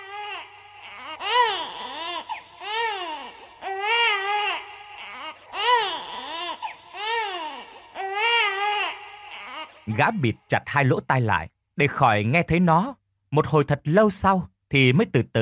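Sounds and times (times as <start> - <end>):
baby crying, mournful and persistent: 0.0 - 10.2
speech: 9.9 - 15.4.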